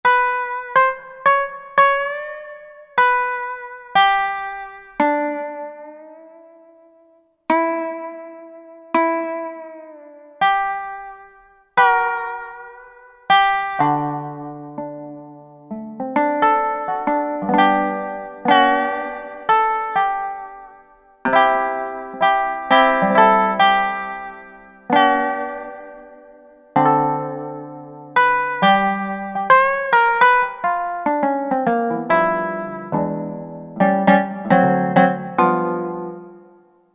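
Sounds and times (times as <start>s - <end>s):
resonator guitar playing country: 0.0s - 36.9s.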